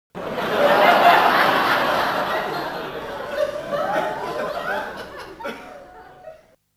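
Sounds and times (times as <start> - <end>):
big crowd laughing: 0.2 - 6.6.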